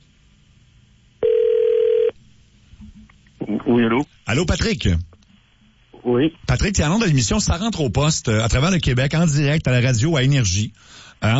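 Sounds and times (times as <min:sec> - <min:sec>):
telephone tone as a call is placed: 0:01.2 - 0:02.2
speech: 0:03.7 - 0:05.1, 0:06.0 - 0:11.3.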